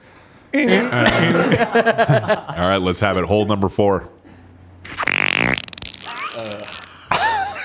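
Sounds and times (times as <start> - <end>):
speech: 0.5 - 4.2
laughter: 0.6 - 2.6, 6.1 - 7.6
loud buzzy fart: 4.8 - 7.6.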